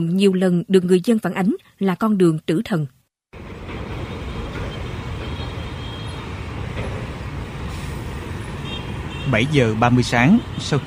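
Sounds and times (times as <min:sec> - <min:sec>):
speech: 0:00.0 - 0:03.0, 0:09.3 - 0:10.8
container trucks and lorries in heavy congested morning road traffic: 0:03.4 - 0:10.8.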